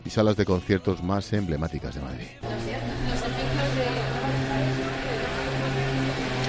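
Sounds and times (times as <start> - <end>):
speech: 0.1 - 3.9
motorcycle passing on a quiet night street in Madrid: 2.4 - 6.4.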